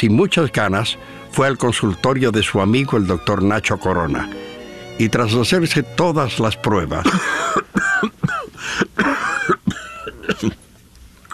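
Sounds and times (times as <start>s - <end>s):
speech: 0.0s - 7.8s, 10.4s - 10.6s
quiet breathing: 1.0s - 1.3s, 8.6s - 9.0s
smoker with damaged lungs coughing harshly: 7.0s - 10.6s.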